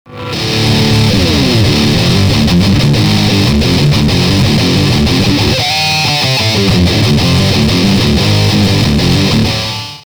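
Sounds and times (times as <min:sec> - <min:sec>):
death metal distortion effect pedal: 0:00.0 - 0:10.0.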